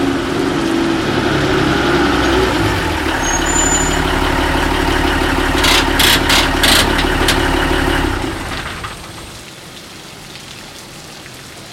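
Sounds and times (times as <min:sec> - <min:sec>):
delivery van engine reversing to a loading ramp: 0:00.0 - 0:09.3.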